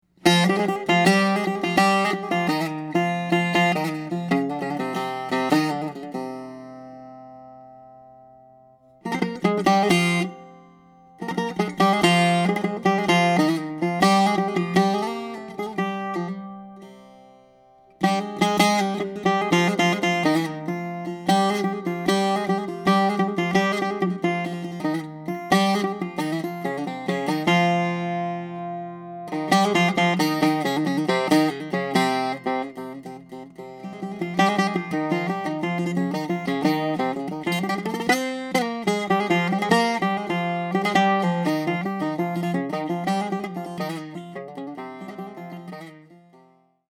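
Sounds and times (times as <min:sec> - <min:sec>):
bouzouki improvisation: 0:00.0 - 0:46.9.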